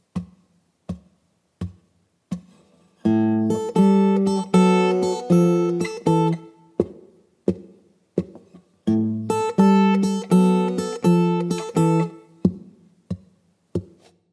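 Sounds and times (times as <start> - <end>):
blues guitar turnaround: 1.6 - 12.8.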